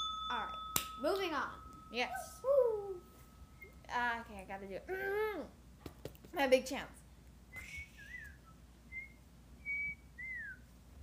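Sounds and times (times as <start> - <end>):
low hum: 0.0 - 11.0
speech: 1.0 - 2.7, 3.9 - 5.6, 6.3 - 7.0
person whistling a short wavering tune: 7.5 - 10.6.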